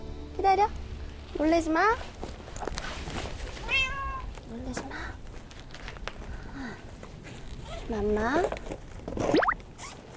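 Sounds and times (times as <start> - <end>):
outdoor hum: 0.0 - 10.1
speech: 0.4 - 0.8, 1.4 - 2.2, 7.9 - 9.5
cat meowing: 3.6 - 4.4.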